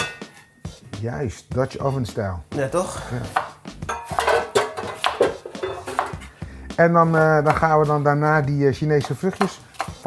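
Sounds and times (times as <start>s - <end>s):
large metal cooking pot clanking and scraping as it is lifted: 0.0s - 0.6s, 3.9s - 6.2s
speech: 1.0s - 3.5s, 6.8s - 10.0s.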